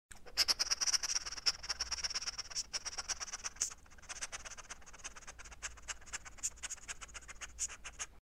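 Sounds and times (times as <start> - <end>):
hedgehog sniffing: 0.2 - 8.2.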